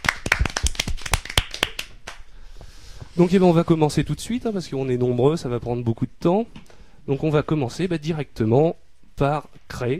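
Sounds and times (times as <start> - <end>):
audience applause: 0.0 - 1.9
speech: 3.2 - 9.9.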